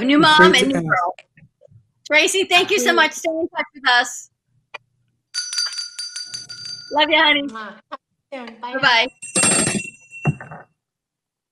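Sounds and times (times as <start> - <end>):
speech: 0.0 - 1.3, 2.1 - 4.3, 6.9 - 9.7
bell ringing with a bright metallic clang: 5.4 - 7.1, 8.8 - 10.6.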